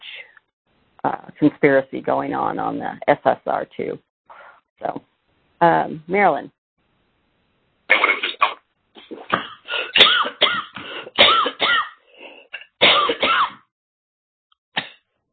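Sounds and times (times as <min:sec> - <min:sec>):
speech: 0:01.0 - 0:04.1, 0:04.8 - 0:06.6
person coughing: 0:07.9 - 0:12.0, 0:12.6 - 0:13.6.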